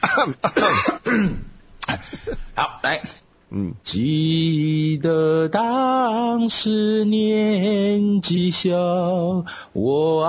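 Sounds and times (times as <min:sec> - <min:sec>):
person clearing throat before singing: 0:00.0 - 0:02.5
speech: 0:00.0 - 0:10.2.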